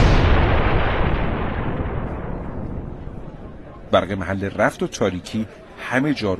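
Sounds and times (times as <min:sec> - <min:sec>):
loud booming explosion echoing in an alley: 0:00.0 - 0:03.9
speech: 0:04.0 - 0:06.3.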